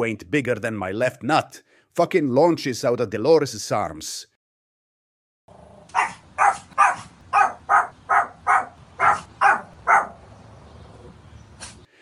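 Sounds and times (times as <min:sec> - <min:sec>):
speech: 0:00.0 - 0:04.3
chihuahua yapping: 0:05.9 - 0:10.2.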